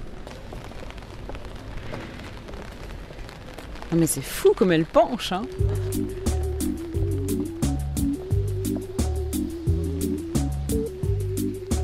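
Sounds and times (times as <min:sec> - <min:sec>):
rain pattering on hard surfaces: 0:00.0 - 0:11.8
speech: 0:03.9 - 0:06.3.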